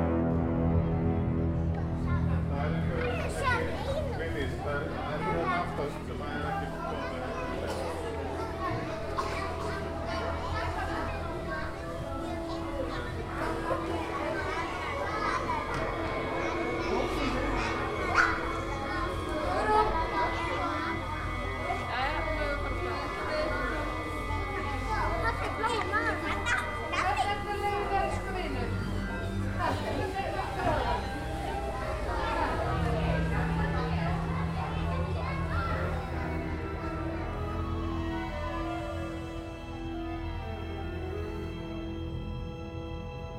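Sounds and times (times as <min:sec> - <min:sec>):
crowd of children playing, shouting and chattering: 0:00.0 - 0:43.3
children crying out: 0:06.6 - 0:39.4.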